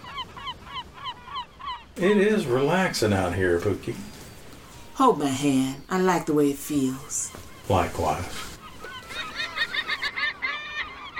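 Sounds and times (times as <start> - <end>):
gull giving loud harsh squawking cries: 0.0 - 3.0, 6.3 - 11.1
speech: 2.0 - 4.1, 5.0 - 8.5.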